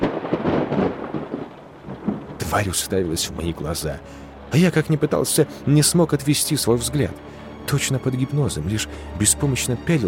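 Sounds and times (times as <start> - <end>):
rolling clap of thunder in a rainstorm: 0.0 - 3.2
speech: 2.5 - 10.0.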